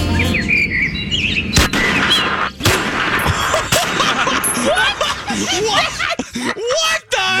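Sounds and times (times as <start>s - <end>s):
bird tweeting sound effect: 0.1s - 2.6s
sharp loud gunshot blasts: 1.5s - 4.3s
laughter: 3.3s - 7.3s.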